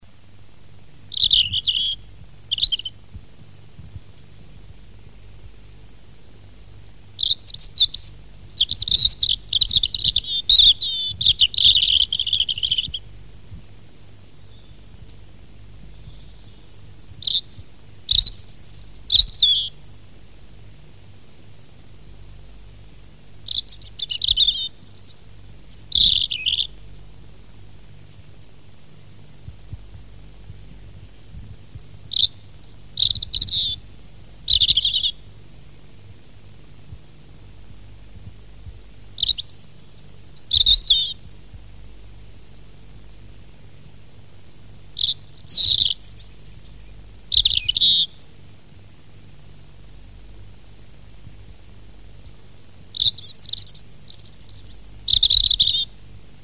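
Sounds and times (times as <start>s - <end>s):
European robin: 1.0s - 3.2s, 6.3s - 13.2s, 14.2s - 20.0s, 23.4s - 27.0s, 31.7s - 35.6s, 39.1s - 41.4s, 44.6s - 48.4s, 52.1s - 56.2s.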